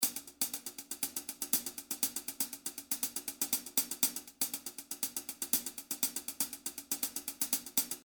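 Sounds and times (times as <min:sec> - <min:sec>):
hi-hat with accented velocity: 0:00.0 - 0:08.0.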